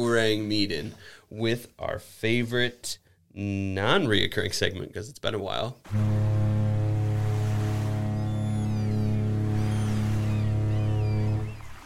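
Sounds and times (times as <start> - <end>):
speech: 0.0 - 6.2
deep loud ship's horn blast: 5.9 - 11.6
sea ambience: 5.9 - 11.8
faint gull-like cries: 8.0 - 11.8.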